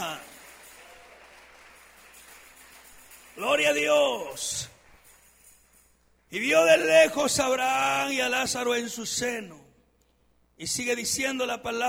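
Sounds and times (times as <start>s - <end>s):
church audience applauding: 0.0s - 5.7s
speech: 3.4s - 4.8s, 6.3s - 9.6s, 10.6s - 11.8s.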